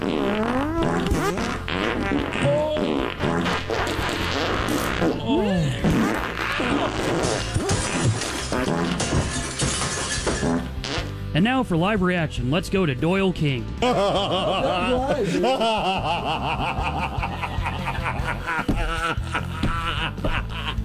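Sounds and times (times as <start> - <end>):
montage of recorded farts: 0.0 - 11.3, 17.1 - 20.8
laughter: 5.0 - 8.0, 13.8 - 20.8
speech: 11.4 - 17.3.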